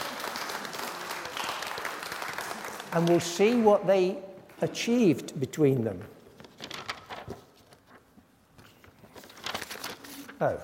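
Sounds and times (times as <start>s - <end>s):
audience clapping: 0.0s - 3.9s
speech: 2.9s - 6.2s, 10.4s - 10.6s.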